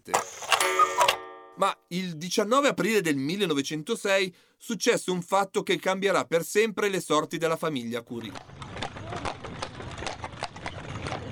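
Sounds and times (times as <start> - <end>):
speech: 1.6 - 8.6
hooves of a horse pulling a carriage along a riverside street by the Seine: 8.2 - 11.3.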